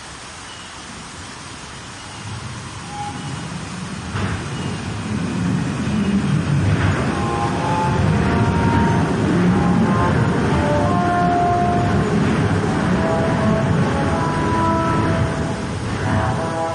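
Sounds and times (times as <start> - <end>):
low steady rumble of traffic: 0.1 - 16.7
French horn playing short sustained notes in the street: 6.9 - 16.7.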